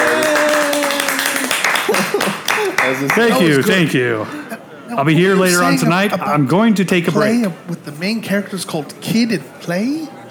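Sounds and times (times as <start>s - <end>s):
tavern crowd roaring cheers and whoops: 0.0s - 2.9s
tavern crowd applause: 0.0s - 4.6s
laughter: 0.0s - 6.3s
speech: 2.9s - 10.2s.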